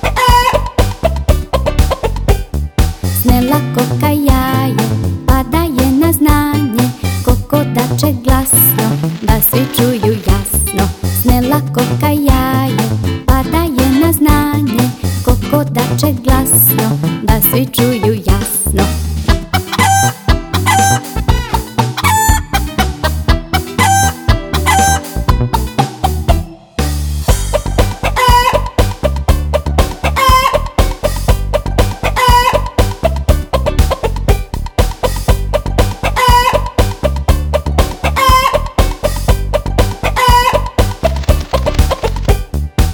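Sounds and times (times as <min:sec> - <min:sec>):
rooster crowing and clucking: 0:00.0 - 0:00.9, 0:19.5 - 0:22.6, 0:23.8 - 0:25.0, 0:28.0 - 0:28.8, 0:30.0 - 0:30.7, 0:32.0 - 0:32.8, 0:36.0 - 0:36.8, 0:38.0 - 0:38.7, 0:40.0 - 0:40.8
loud steady musical backing with a driving beat: 0:00.0 - 0:42.9
speech: 0:03.8 - 0:04.4, 0:08.0 - 0:08.5.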